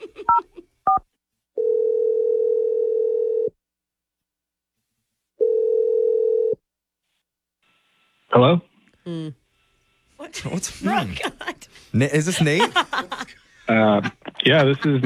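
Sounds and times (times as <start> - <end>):
laughter: 0.0 - 0.7, 10.8 - 15.0
long steady telephone tones: 1.6 - 3.6, 5.4 - 6.6
speech: 8.4 - 9.4, 10.3 - 15.0.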